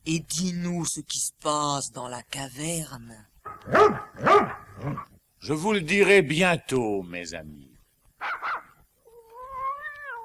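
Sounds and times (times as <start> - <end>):
speech: 0.1 - 7.7
cat meowing: 9.0 - 10.2.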